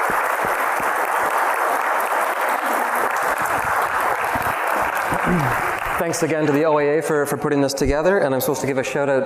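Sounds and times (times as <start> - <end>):
audience applause: 0.0 - 6.7
speech: 5.3 - 9.2.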